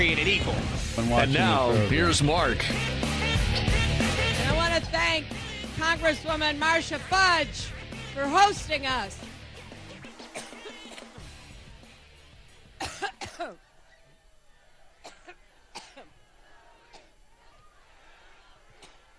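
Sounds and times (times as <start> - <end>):
speech: 0.0 - 3.7, 4.8 - 9.3
person coughing repeatedly: 10.0 - 11.2, 12.8 - 13.6, 15.0 - 16.1.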